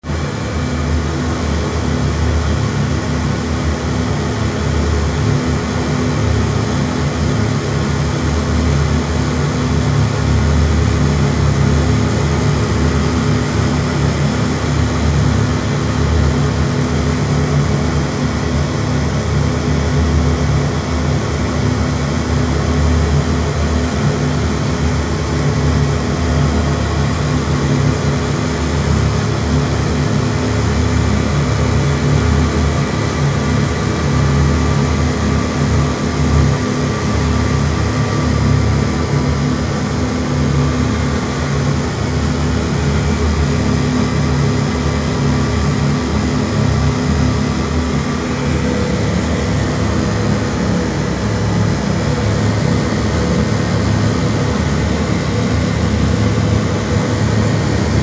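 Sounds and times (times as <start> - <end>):
oil pipeline service vessel scrubber room ambience: 0.0 - 58.0.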